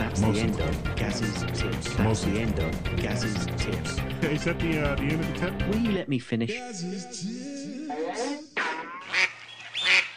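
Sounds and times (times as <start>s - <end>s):
speech: 0.2s - 8.5s
duck quacking sound effect: 8.0s - 10.1s.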